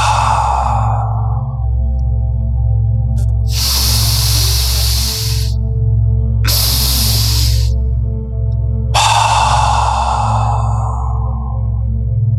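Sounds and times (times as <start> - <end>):
slow deep breathing, inhale and exhale: 0.0 - 1.9, 3.3 - 5.7, 6.5 - 7.8, 9.0 - 12.1
steady low droning background: 0.0 - 12.3.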